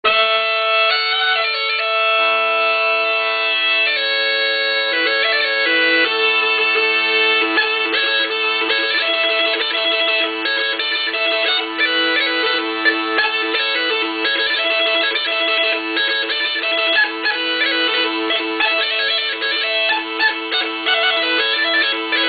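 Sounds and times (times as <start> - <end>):
bagpipes in Nitra: 0.1 - 22.2.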